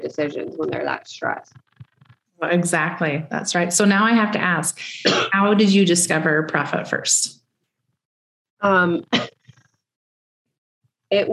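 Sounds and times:
speech: 0.0 - 1.7, 2.4 - 7.4, 8.6 - 9.4, 11.1 - 11.3
person coughing: 5.0 - 5.4, 9.1 - 9.5.

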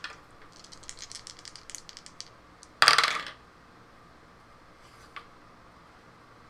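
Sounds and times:
dice rolled across a table during a tabletop roleplaying game: 0.0 - 3.4.

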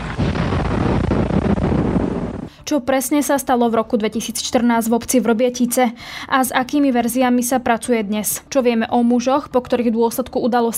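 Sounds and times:
distant explosions at an ammunition depot: 0.0 - 2.6
speech: 2.7 - 10.7.

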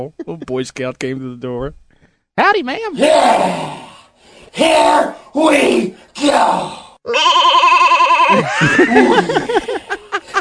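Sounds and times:
laughter: 0.0 - 0.6, 8.3 - 10.3
speech: 0.0 - 1.8, 2.4 - 3.9, 4.5 - 9.8
goat bleating: 7.1 - 8.5.

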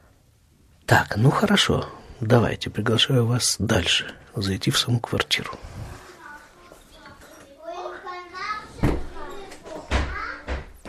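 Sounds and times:
speech: 0.9 - 5.8
children chattering: 6.0 - 10.6.

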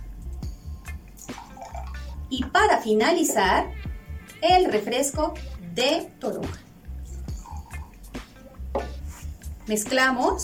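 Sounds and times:
orange juice being poured into a glass of chili, lemon and mineral water: 1.2 - 2.1, 7.3 - 8.0
speech: 2.3 - 3.8, 4.4 - 6.6, 9.7 - 10.4.

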